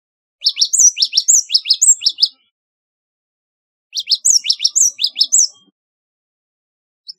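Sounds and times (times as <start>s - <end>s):
Java sparrow high chipping song: 0.4s - 2.5s, 4.0s - 5.7s.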